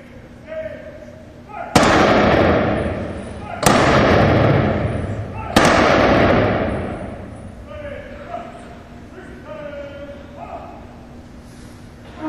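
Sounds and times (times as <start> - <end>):
ceremonial rifle volley honoring veterans at a memorial program: 1.8 - 7.5.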